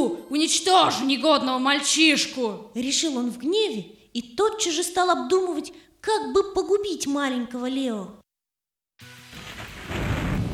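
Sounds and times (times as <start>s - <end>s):
speech: 0.4s - 8.2s
pouring rain: 9.1s - 10.5s
thunder: 9.4s - 10.5s.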